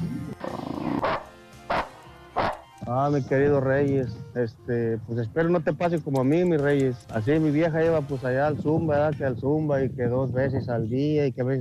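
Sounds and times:
dog growling whine: 0.0 - 1.2
dog barking: 0.9 - 2.6
speech: 2.9 - 11.5.

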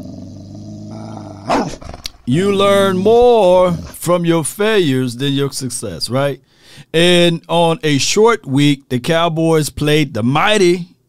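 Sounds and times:
dog growling: 0.0 - 4.0
dog barking: 1.4 - 1.8
speech: 1.7 - 10.9.

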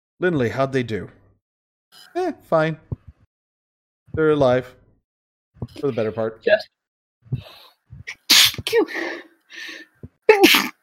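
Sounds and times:
speech: 0.2 - 1.2, 1.9 - 2.9, 4.2 - 4.8, 5.6 - 10.7
person sneezing: 8.2 - 8.8, 10.3 - 10.8.

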